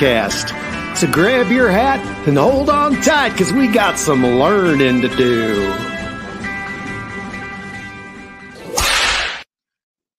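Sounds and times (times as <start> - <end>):
speech: 0.0 - 5.9
musical sting with sustained tones: 3.8 - 7.1
loud sharp whip crack: 8.6 - 9.5.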